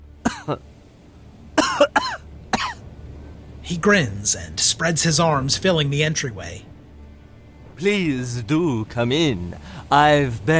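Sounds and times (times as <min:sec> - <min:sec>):
man coughing harshly: 0:00.3 - 0:00.6, 0:01.6 - 0:02.8
speech: 0:00.5 - 0:00.7, 0:03.7 - 0:06.7, 0:07.8 - 0:10.5.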